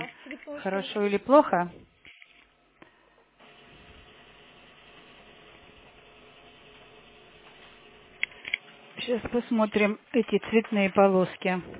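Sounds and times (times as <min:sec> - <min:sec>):
speech: 0:00.5 - 0:01.8, 0:09.1 - 0:11.7
printer running with a steady mechanical whir and rattle: 0:03.4 - 0:11.7.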